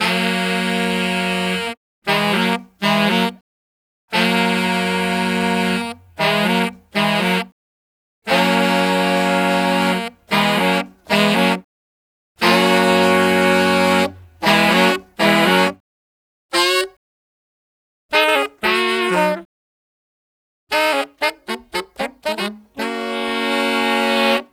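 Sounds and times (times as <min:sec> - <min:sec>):
saxophone playing chorus to verse: 0:00.0 - 0:03.4, 0:04.1 - 0:07.5, 0:08.3 - 0:11.7, 0:12.4 - 0:15.8, 0:16.5 - 0:17.0, 0:18.1 - 0:19.5, 0:20.7 - 0:24.5.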